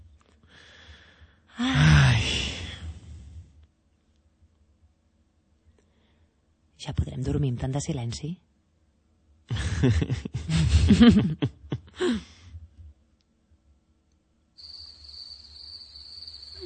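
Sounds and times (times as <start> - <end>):
low hum: 0.0 - 16.6
speech: 6.9 - 8.5, 9.8 - 10.3, 10.9 - 11.6
laughter: 9.5 - 12.1
crickets chirping at night at a country house: 14.6 - 16.6.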